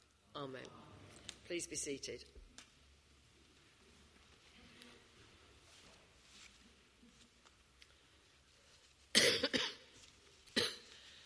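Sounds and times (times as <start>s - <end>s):
speech: 0.4s - 0.9s, 1.5s - 2.4s
harsh coughs: 9.2s - 9.9s, 10.6s - 10.9s.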